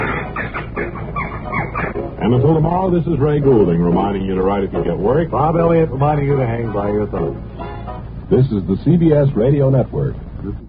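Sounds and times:
bird calling in clucking squawks: 0.0s - 2.2s
speech: 2.3s - 7.5s, 8.3s - 10.6s.

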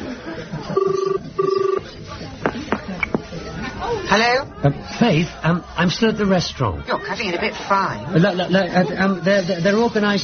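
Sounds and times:
faint murmur: 0.0s - 10.2s
phone call ringing tone: 0.7s - 1.9s
speech: 4.1s - 10.2s.

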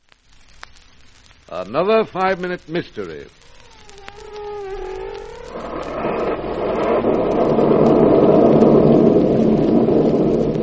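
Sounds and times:
heavy rain roaring outside a house: 1.0s - 10.6s
speech: 1.5s - 3.4s
long rolling rumble of thunder outside a house: 4.8s - 10.6s.

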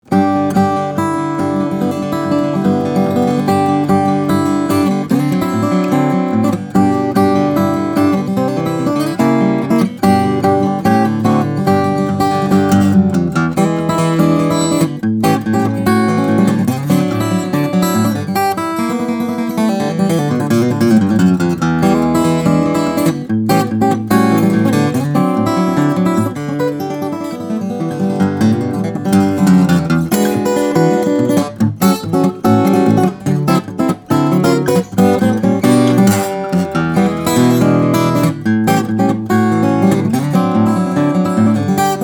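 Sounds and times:
Taylor flattop steel string guitar: 0.0s - 42.0s.

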